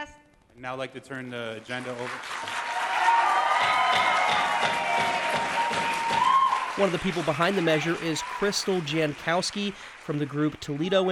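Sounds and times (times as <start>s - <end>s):
speech: 0.6s - 2.7s, 6.8s - 11.0s
crowd of activists clapping at a city council meeting: 1.5s - 11.0s
scattered shouts and whoops from activists: 2.6s - 6.8s.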